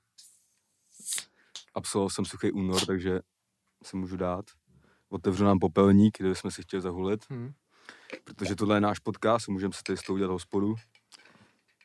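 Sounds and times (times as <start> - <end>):
beer being opened: 0.2 - 1.3
speech: 1.8 - 10.9.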